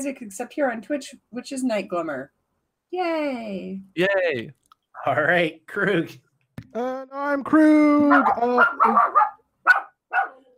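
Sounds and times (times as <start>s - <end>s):
speech: 0.0s - 9.8s
dog barking loudly in the room: 8.1s - 10.5s.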